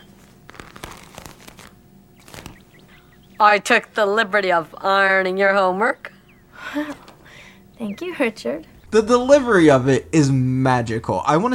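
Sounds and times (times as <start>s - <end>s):
morning newspaper being handled and rustling: 0.0s - 3.0s
speech: 3.4s - 6.1s, 6.7s - 7.0s, 7.8s - 11.5s.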